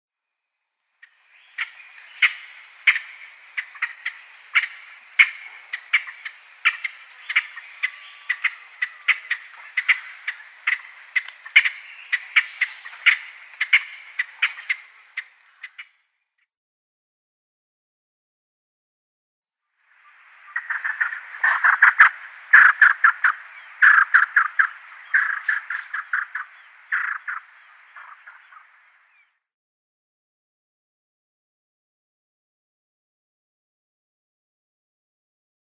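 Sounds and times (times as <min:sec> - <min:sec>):
Double-spurred Francolin calling: 0:00.9 - 0:16.0, 0:20.0 - 0:29.3.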